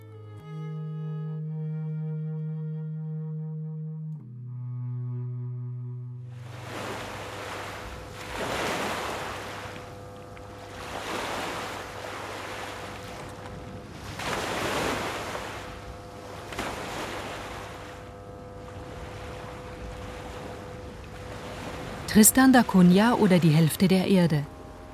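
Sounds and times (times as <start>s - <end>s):
low sustained tones: 0.0s - 24.9s
ocean surf waves breaking on shore: 6.3s - 24.9s
speech: 22.2s - 24.5s.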